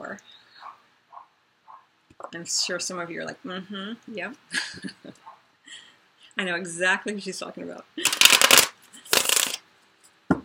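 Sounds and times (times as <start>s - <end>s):
speech: 2.3s - 5.0s, 6.4s - 8.1s
tarot cards rustling as drawn from a deck: 8.0s - 9.6s.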